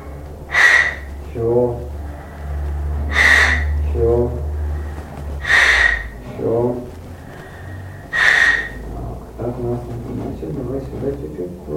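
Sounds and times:
constant low hum: 0.0 - 11.7
speech: 1.3 - 1.9
forceful inhalations during a breathing exercise: 1.9 - 9.1
short lower exhaled sound: 2.0 - 9.2.

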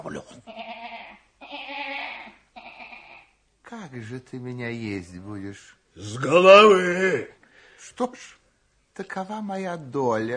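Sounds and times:
ram bleating: 0.4 - 3.3
speech: 3.9 - 8.4, 9.0 - 10.3.

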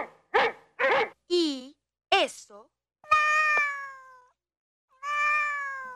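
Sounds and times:
speech: 2.2 - 2.8
cat meowing: 3.1 - 5.9.

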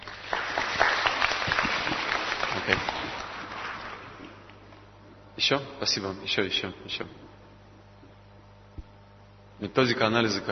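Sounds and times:
audience applause: 0.0 - 4.5
speech: 5.5 - 7.3, 9.6 - 10.5.

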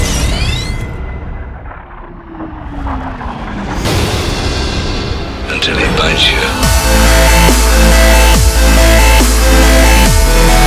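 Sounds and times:
sci-fi base cannon powering up with rising electronic whine: 0.3 - 10.6
dense rumbling roar of sci-fi base cannon: 1.2 - 8.3
speech: 5.6 - 6.6.

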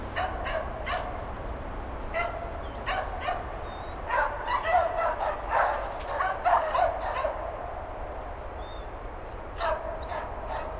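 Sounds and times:
bloodhound barking outdoors: 0.2 - 1.2, 2.2 - 3.5, 4.1 - 7.5, 9.6 - 10.7.

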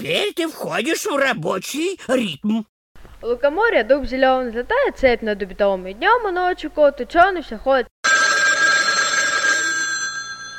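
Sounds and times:
speech: 0.0 - 7.9
telephone ringing with an electronic ring: 8.0 - 10.5.

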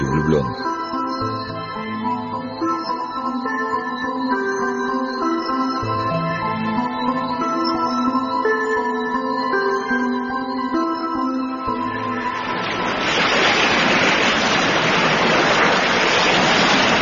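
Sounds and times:
soft melodic music: 0.0 - 12.8
speech: 0.2 - 0.7
river churning over stones: 12.5 - 17.0.

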